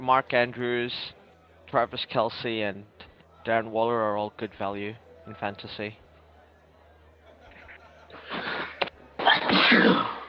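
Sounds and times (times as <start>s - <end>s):
speech: 0.0s - 6.0s
laughter: 7.0s - 9.5s
forceful sneeze: 8.3s - 10.2s.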